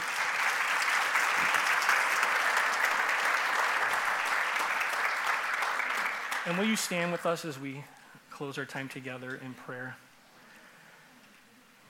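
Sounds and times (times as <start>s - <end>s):
audience applauding: 0.0s - 7.4s
speech: 6.4s - 10.0s.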